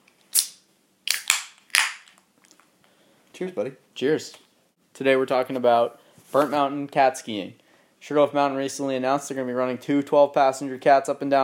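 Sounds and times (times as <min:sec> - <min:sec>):
beer can cracked open with fizzy hiss: 0:00.3 - 0:02.2
speech: 0:03.4 - 0:04.4, 0:05.0 - 0:11.4.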